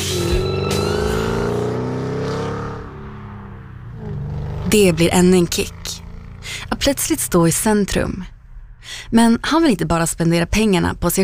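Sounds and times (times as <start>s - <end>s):
car engine revving loudly: 0.0s - 8.9s
speech: 4.7s - 5.8s, 6.8s - 11.2s.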